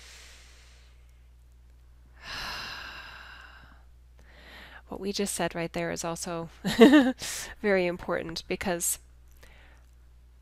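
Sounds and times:
deep breath: 0.0 - 1.1, 2.2 - 4.9, 9.4 - 9.9
low steady hum: 0.0 - 10.4
speech: 4.9 - 9.0.

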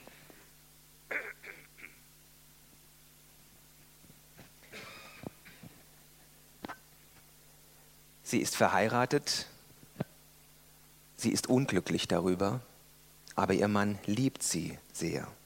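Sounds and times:
faint hum: 0.0 - 15.4
person clearing throat: 1.1 - 2.0, 4.6 - 5.8
speech: 8.3 - 9.5, 11.2 - 12.7, 13.4 - 15.4.

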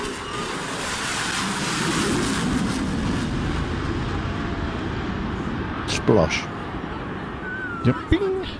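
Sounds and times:
military jet flying low over a river: 0.0 - 8.5
speech: 6.1 - 6.5, 7.8 - 8.5.

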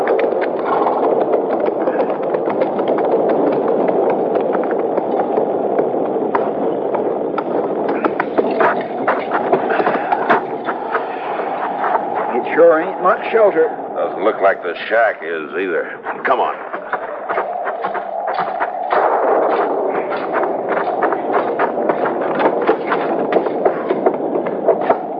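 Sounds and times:
ridden horses' hooves clip-clopping: 0.0 - 13.3, 16.0 - 25.1
loud rushing noise: 0.0 - 25.1
speech: 13.1 - 16.6.

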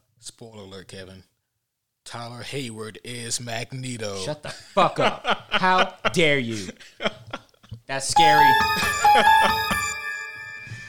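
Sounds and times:
speech: 0.4 - 1.3, 2.1 - 7.0, 7.9 - 9.7
doorbell chiming: 8.2 - 10.8.

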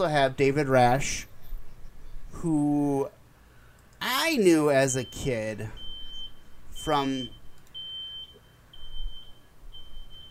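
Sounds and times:
speech: 0.0 - 1.3, 2.3 - 3.2, 4.3 - 5.8, 6.8 - 7.4
truck reversing beeper: 4.9 - 10.2.

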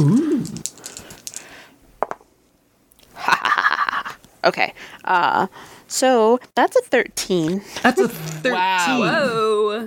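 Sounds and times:
speech: 0.0 - 0.7, 4.4 - 9.8
bubblegum dice clattering across a tabletop for a game roll: 0.4 - 2.2.

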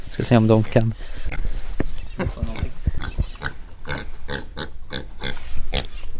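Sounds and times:
steady noise: 0.0 - 6.1
speech: 0.2 - 1.5, 2.2 - 2.5
pigs grunting and snorting: 2.1 - 6.0.

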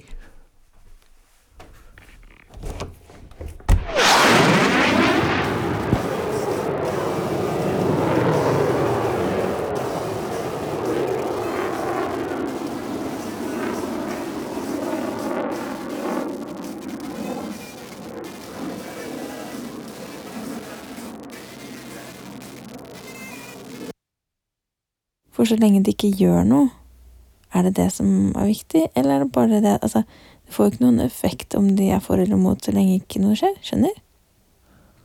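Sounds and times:
airplane flying by outside heard through a glass window pane: 3.9 - 23.8
speech: 25.4 - 26.8, 27.6 - 34.0.

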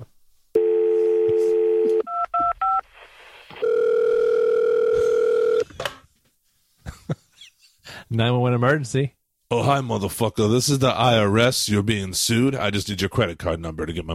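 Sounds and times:
telephone dial tone: 0.6 - 2.8, 3.6 - 5.6
speech: 8.2 - 14.1.

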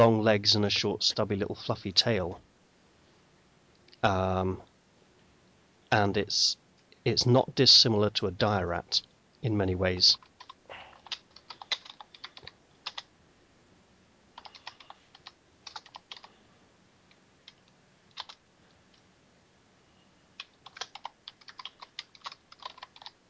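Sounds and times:
speech: 0.0 - 2.5, 4.0 - 4.7, 5.9 - 10.3
typing on a computer keyboard: 10.2 - 13.1, 14.4 - 16.3, 17.5 - 18.4, 20.4 - 23.2.

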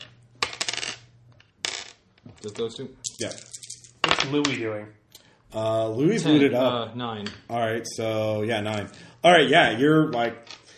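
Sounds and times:
two fudge dice and two six-sided dice clattering on a hard surface: 0.0 - 4.6
speech: 2.4 - 3.6, 4.2 - 10.5.

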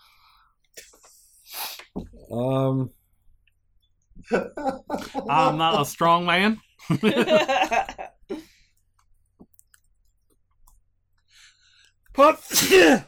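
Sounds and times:
speech: 2.3 - 3.0, 4.2 - 7.9, 12.2 - 13.0
laughter: 4.2 - 6.0, 6.8 - 8.2
noisy vocal outburst: 12.2 - 13.0
loud sneeze: 12.4 - 13.0.

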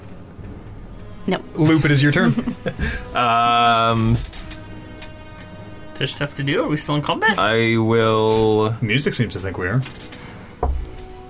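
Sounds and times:
chair creaking under someone's weight: 0.0 - 6.0, 7.0 - 11.2
speech: 1.3 - 4.4, 6.0 - 10.2
laughter: 1.6 - 4.1.

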